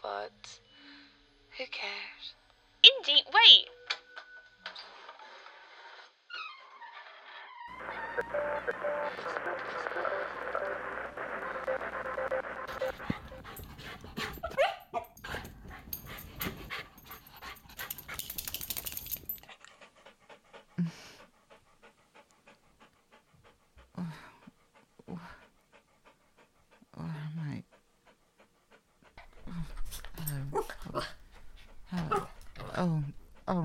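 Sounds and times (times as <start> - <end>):
speech: 0.2 - 0.7, 1.6 - 2.4, 3.0 - 3.8, 8.2 - 13.1
dog panting heavily and rapidly: 12.7 - 33.6
dog letting out short high whimpers and yips: 14.2 - 15.2.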